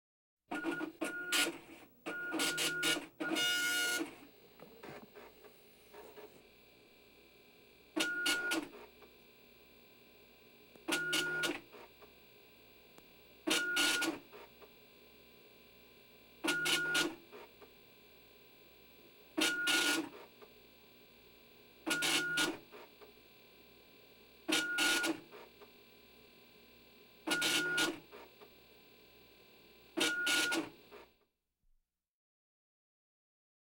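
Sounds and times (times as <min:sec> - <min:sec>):
dot matrix printer printing: 0:00.5 - 0:06.4, 0:08.0 - 0:09.0, 0:10.8 - 0:12.1, 0:13.4 - 0:14.7, 0:16.4 - 0:17.7, 0:19.3 - 0:20.5, 0:21.8 - 0:23.1, 0:24.4 - 0:25.7, 0:27.2 - 0:28.5, 0:29.9 - 0:31.1.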